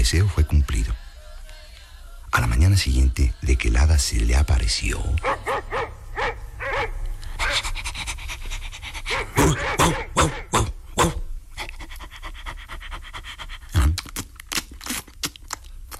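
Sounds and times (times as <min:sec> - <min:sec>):
speech: 0:00.0 - 0:01.0, 0:02.6 - 0:06.0
huge dog barking with loud deep barks: 0:05.2 - 0:07.7, 0:09.0 - 0:10.8
huge dog panting: 0:07.4 - 0:10.5, 0:11.6 - 0:13.7.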